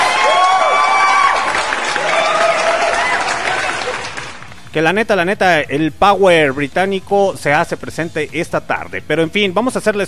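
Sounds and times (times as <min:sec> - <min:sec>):
whoops and shouted voices: 0:00.0 - 0:03.9
large crowd applauding and cheering: 0:00.0 - 0:04.7
speech: 0:04.8 - 0:10.0.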